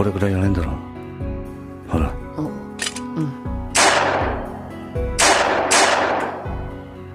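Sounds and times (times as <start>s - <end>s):
speech: 0.0s - 0.9s, 1.9s - 2.5s
pistol gunshots: 3.7s - 4.5s, 5.2s - 6.7s.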